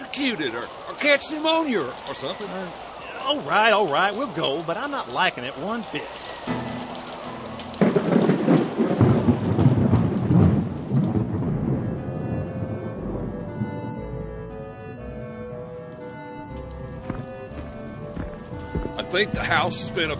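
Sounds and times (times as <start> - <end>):
speech: 0.2 - 6.6, 19.2 - 20.1
thunder rumbling: 7.8 - 14.7.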